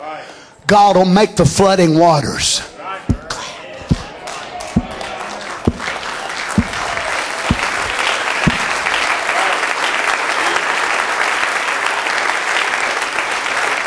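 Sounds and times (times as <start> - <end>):
speech: 0.2 - 2.7
audience clapping hands: 3.9 - 13.8.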